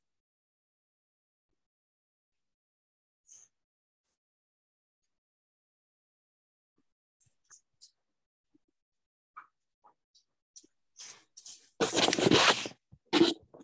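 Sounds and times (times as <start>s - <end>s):
curtains being drawn closed: 11.8s - 13.4s.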